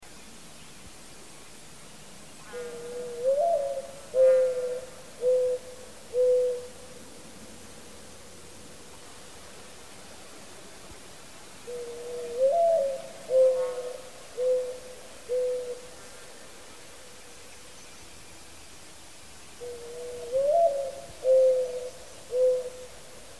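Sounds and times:
Mourning Dove Zenaida macroura: 2.5s - 7.8s, 11.6s - 16.0s, 19.5s - 23.1s.

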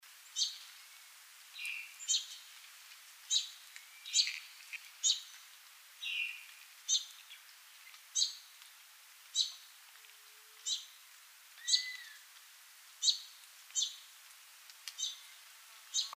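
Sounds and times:
Magnolia Warbler Setophaga magnolia singing: 0.3s - 1.0s, 1.6s - 2.5s, 3.3s - 5.3s, 6.0s - 8.5s, 9.4s - 9.7s, 10.6s - 11.0s, 11.6s - 12.2s, 13.0s - 14.0s, 15.0s - 16.1s.

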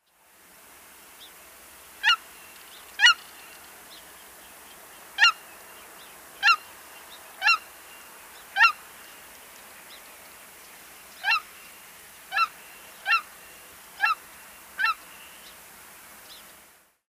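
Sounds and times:
Cackling goose Branta hutchinsii: 3.0s - 3.2s, 5.2s - 5.4s, 6.4s - 6.7s, 7.4s - 7.7s, 8.6s - 8.8s, 11.2s - 11.5s, 12.3s - 13.3s, 14.0s - 14.2s, 14.8s - 15.0s.

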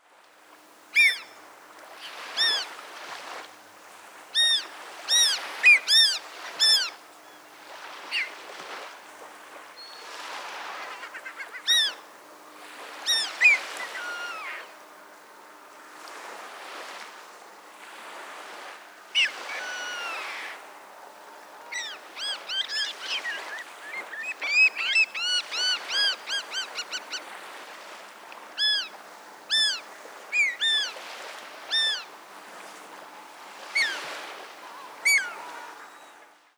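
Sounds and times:
Bonaparte's gull Chroicocephalus philadelphia calling: 1.0s - 1.4s, 2.0s - 2.8s, 4.4s - 7.0s, 8.0s - 8.4s, 10.6s - 12.1s, 13.0s - 14.8s, 19.2s - 20.7s, 21.5s - 27.7s, 28.5s - 32.2s, 33.6s - 36.0s.

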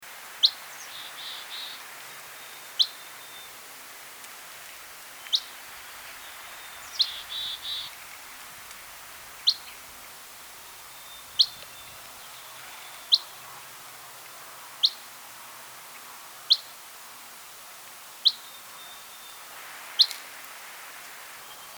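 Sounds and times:
Dusky Flycatcher Empidonax oberholseri calling: 0.4s - 3.6s, 4.6s - 13.8s, 14.8s - 15.1s, 16.5s - 16.7s, 18.2s - 20.2s.

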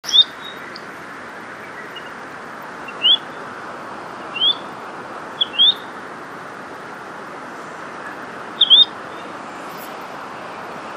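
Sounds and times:
Semipalmated Plover Charadrius semipalmatus call: 2.8s - 3.4s, 4.3s - 4.7s, 5.4s - 5.9s, 8.1s - 9.3s.

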